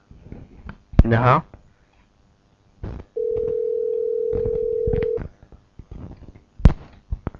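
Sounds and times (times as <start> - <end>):
speech: 1.1 - 1.6
telephone line dial tone: 3.2 - 5.2.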